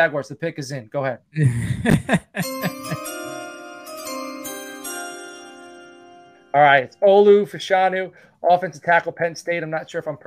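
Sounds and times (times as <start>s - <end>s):
speech: 0.0s - 2.7s, 6.5s - 10.2s
laughter: 1.4s - 3.4s
bell struck to announce draft pick: 2.3s - 7.4s.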